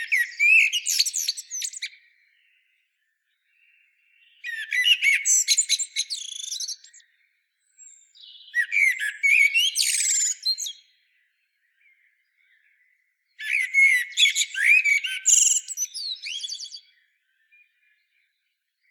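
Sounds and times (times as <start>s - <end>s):
common blackbird (Turdus merula) singing: 0.0s - 18.8s.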